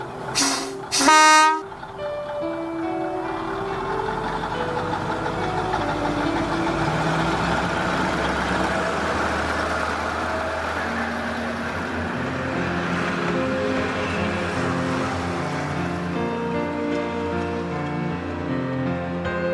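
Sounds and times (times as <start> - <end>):
departing train engine rumble: 0.0 - 19.4
departing train whistle toots: 0.3 - 1.7.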